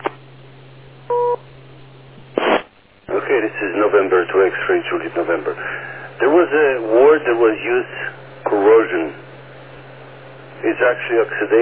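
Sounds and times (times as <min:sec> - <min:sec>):
low steady hum: 0:00.0 - 0:11.6
two-tone electronic beep signalling a caller's turn to talk: 0:01.1 - 0:01.4
speech: 0:03.4 - 0:09.2, 0:10.6 - 0:11.6.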